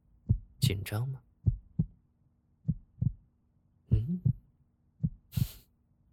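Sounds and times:
heartbeat thumping: 0:00.2 - 0:00.8, 0:01.4 - 0:02.0, 0:02.6 - 0:03.2, 0:03.9 - 0:04.4, 0:05.0 - 0:05.6
speech: 0:00.7 - 0:01.3.

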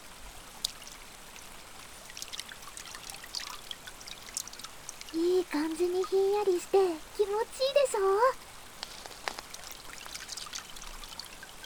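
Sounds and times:
river water flowing and splashing: 0:00.4 - 0:11.6
speech: 0:05.1 - 0:08.5.

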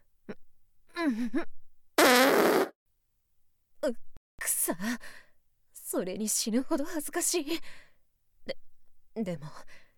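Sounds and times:
speech: 0:01.1 - 0:01.6, 0:04.7 - 0:05.2, 0:05.9 - 0:07.9, 0:09.2 - 0:09.8
fart: 0:02.0 - 0:02.8.

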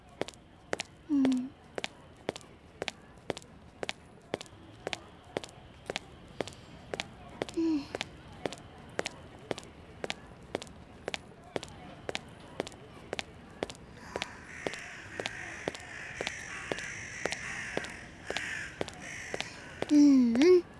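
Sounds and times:
footsteps: 0:00.2 - 0:20.7
person speaking: 0:01.1 - 0:01.6, 0:07.5 - 0:08.1, 0:13.8 - 0:16.5, 0:17.3 - 0:20.7
crows cawing: 0:14.0 - 0:20.0.

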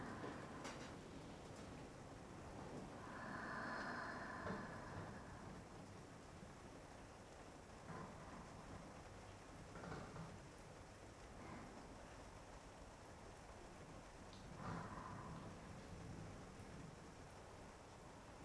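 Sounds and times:
cold autumn rain falling: 0:00.0 - 0:18.4
faint low rumble: 0:00.0 - 0:18.4.

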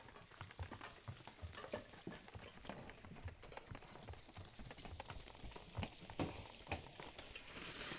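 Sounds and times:
clicks, taps and clatters of inari sushi being prepared in a kitchen: 0:00.0 - 0:07.4
steady low rustle in a kitchen: 0:07.2 - 0:07.9.

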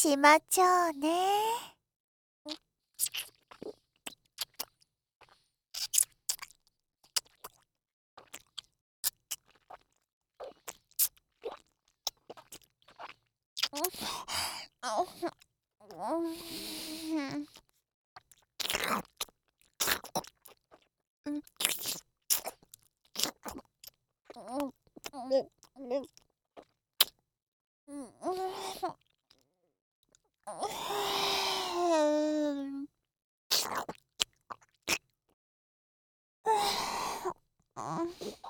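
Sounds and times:
speech: 0:00.0 - 0:01.7, 0:02.4 - 0:03.8, 0:13.7 - 0:17.6, 0:21.3 - 0:21.7, 0:24.4 - 0:26.2, 0:27.9 - 0:29.0, 0:30.5 - 0:32.9, 0:33.6 - 0:34.0, 0:36.5 - 0:38.4
crunchy chewing and biting of food: 0:03.0 - 0:14.0, 0:17.6 - 0:24.0.

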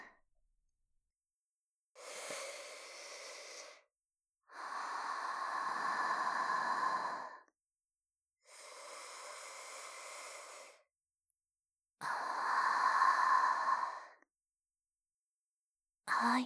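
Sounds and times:
deep breath taken to calm down: 0:02.0 - 0:03.9, 0:04.5 - 0:07.5, 0:08.5 - 0:10.8, 0:12.0 - 0:14.2.

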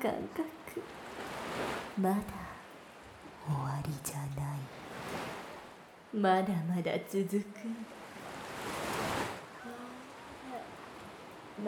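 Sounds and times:
speech: 0:00.0 - 0:02.4, 0:03.4 - 0:05.2, 0:06.1 - 0:08.0, 0:08.6 - 0:09.0
ocean wave surging in and draining away: 0:00.6 - 0:06.2, 0:07.1 - 0:11.6
faint voice-like murmur: 0:09.5 - 0:10.8.

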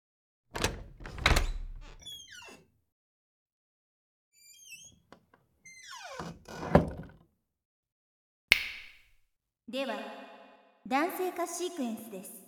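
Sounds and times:
door latch rattling: 0:00.5 - 0:02.6
door opening with heavy thunks: 0:00.5 - 0:02.6, 0:04.4 - 0:07.2
creaking squeal of door hinges: 0:00.5 - 0:02.7, 0:04.4 - 0:07.2
speech: 0:09.7 - 0:10.2, 0:10.8 - 0:12.4.

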